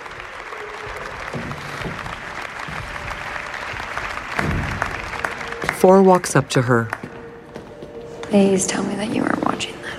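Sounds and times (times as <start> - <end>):
crowd applauding in a chamber: 0.0 - 7.2
speech: 5.8 - 7.0, 8.3 - 9.8.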